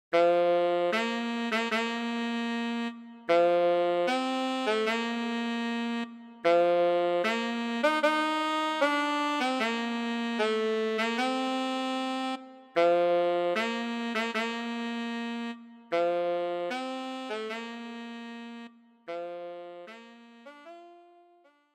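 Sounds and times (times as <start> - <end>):
solo tenor saxophone: 0.1 - 21.7.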